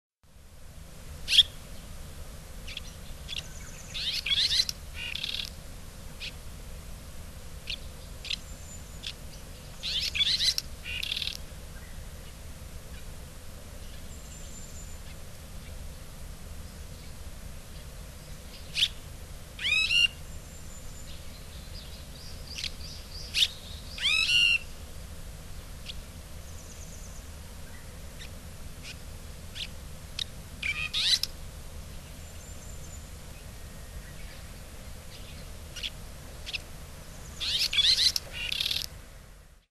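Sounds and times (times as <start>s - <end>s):
Red-rumped Swallow calling: 1.3s - 1.6s, 2.7s - 5.6s, 7.6s - 13.1s, 18.2s - 19.0s, 19.6s - 24.8s, 25.8s - 31.4s, 32.0s - 38.9s.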